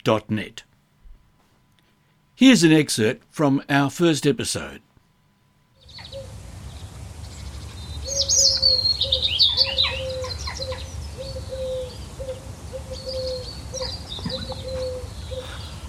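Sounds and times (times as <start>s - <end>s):
speech: 0.0s - 0.7s, 2.4s - 4.9s
steady low rural background: 0.0s - 15.8s
repeating soft cooing call: 5.8s - 6.4s, 8.0s - 15.8s
birds singing and chirping in the countryside: 5.8s - 15.8s.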